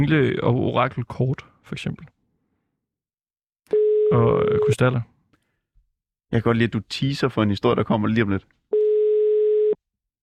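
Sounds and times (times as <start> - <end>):
speech: 0.0 - 2.2, 4.1 - 5.1, 6.3 - 8.6
telephone busy signal: 8.8 - 9.8.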